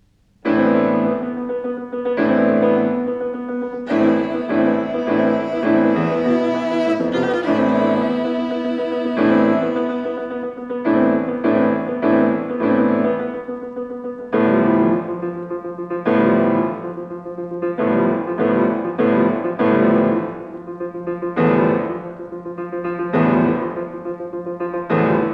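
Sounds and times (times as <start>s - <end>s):
piano: 0.0s - 25.3s
violin: 3.0s - 11.9s.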